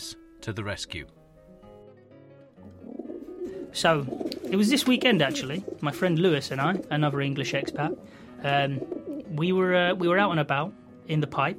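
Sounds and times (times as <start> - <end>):
speech: 0.4 - 1.2, 3.7 - 11.5
pigeon cooing: 2.7 - 8.1, 8.7 - 9.3.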